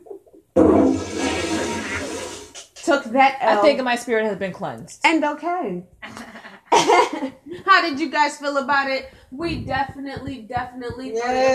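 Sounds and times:
toilet flushing: 0.6 - 2.8
speech: 2.9 - 6.2, 7.2 - 11.5.

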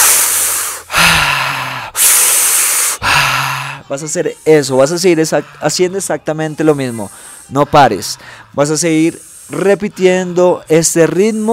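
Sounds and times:
deep breathing through a wide-open mouth during a breathing exercise: 0.0 - 5.7, 6.7 - 9.8
speech: 3.9 - 11.5.

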